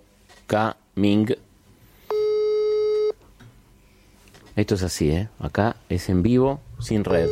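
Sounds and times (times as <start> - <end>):
speech: 0.5 - 1.5, 4.6 - 7.2
outgoing phone call electronic ringing tone: 2.1 - 3.2.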